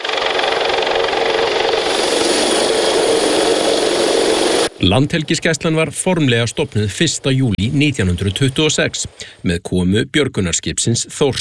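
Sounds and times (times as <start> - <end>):
coast guard helicopter landing beside a waterfront concert hall: 0.0 - 8.8
speech: 4.8 - 11.3.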